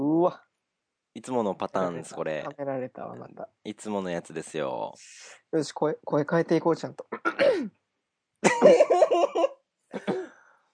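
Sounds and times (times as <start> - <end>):
speech: 0.2 - 0.5, 1.2 - 7.8, 8.4 - 10.2
person clearing throat with voiced coughing grunts: 7.1 - 7.8, 8.5 - 9.1, 10.0 - 10.4
laughter: 8.4 - 10.2.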